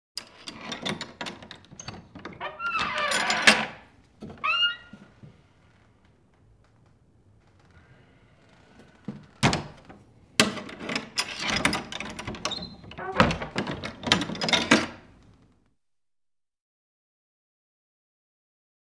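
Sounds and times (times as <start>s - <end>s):
door opening and closing: 0.2s - 6.0s, 6.7s - 15.6s.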